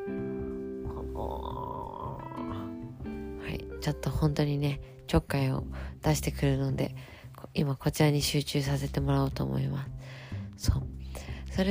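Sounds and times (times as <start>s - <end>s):
man yawning: 0.9s - 2.8s
speech: 3.8s - 11.6s.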